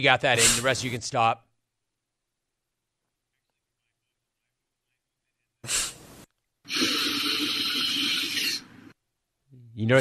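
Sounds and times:
speech: 0.0s - 1.4s, 9.8s - 10.0s
quick nasal sniff: 5.6s - 8.6s.

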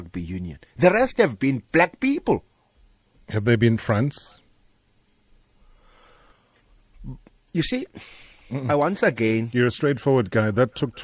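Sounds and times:
speech: 0.1s - 2.5s, 3.3s - 4.4s, 7.0s - 11.0s
deep breath drawn in: 5.6s - 6.7s.

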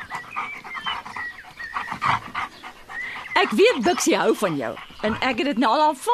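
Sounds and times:
dog panting rapidly: 0.0s - 6.1s
speech: 3.4s - 6.1s.

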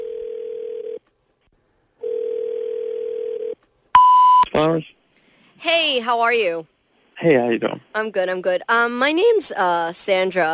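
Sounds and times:
telephone tone while a number is dialed: 4.0s - 4.5s
speech: 4.6s - 5.0s, 5.6s - 10.5s.

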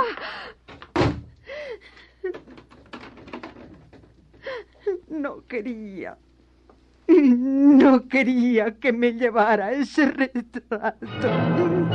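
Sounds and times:
door slamming: 0.7s - 1.4s
speech: 5.2s - 6.3s, 7.2s - 11.9s.

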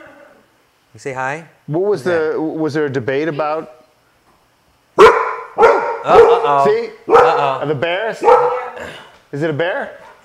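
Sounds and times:
speech: 1.0s - 3.8s, 6.0s - 10.2s
dog barking: 5.0s - 7.6s, 8.2s - 8.8s.

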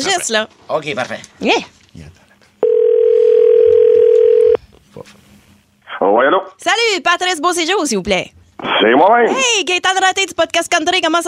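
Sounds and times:
speech: 0.0s - 2.1s, 6.0s - 11.2s
ringback tone of an outgoing telephone call: 2.6s - 4.6s.

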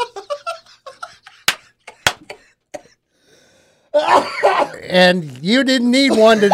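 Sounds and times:
breathy laughter: 0.0s - 2.6s
person coughing after drink goes down the wrong pipe: 2.0s - 3.0s, 4.0s - 5.0s, 6.0s - 6.5s
speech: 4.8s - 6.5s.

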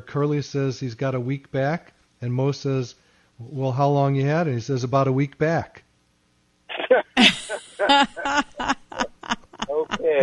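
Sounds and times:
speech: 0.0s - 5.8s, 7.2s - 8.5s, 10.1s - 10.2s
short voiced vocal sounds: 6.7s - 8.6s, 9.7s - 10.2s
person sneezing: 6.8s - 8.2s
laughter: 6.9s - 10.2s.

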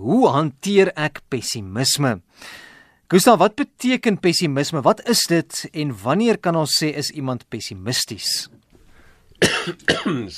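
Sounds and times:
speech: 0.0s - 8.6s, 9.4s - 10.3s
person coughing: 9.4s - 10.3s.

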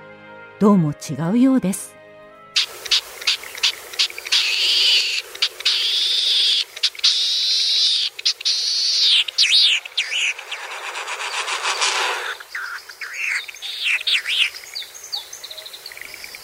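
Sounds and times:
speech: 0.6s - 2.0s
Latham's snipe wing drumming in a display dive: 2.6s - 14.4s
Latham's snipe giving thin hoarse calls: 2.6s - 16.4s.

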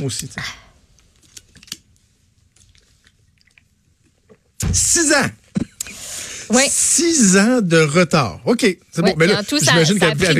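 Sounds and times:
speech: 0.0s - 0.7s, 4.7s - 5.4s, 6.5s - 10.3s
person sipping water: 2.5s - 4.6s.

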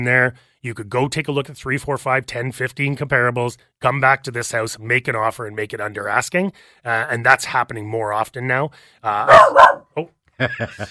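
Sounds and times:
speech: 0.0s - 10.9s
pet dog barking at passing traffic: 9.3s - 10.0s
laughter: 10.4s - 10.9s.

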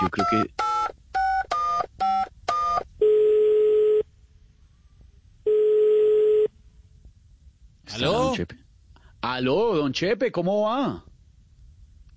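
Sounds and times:
long steady telephone ringing tones: 0.0s - 4.1s, 5.4s - 6.5s
speech: 0.1s - 0.6s, 8.0s - 8.6s, 9.2s - 11.1s.

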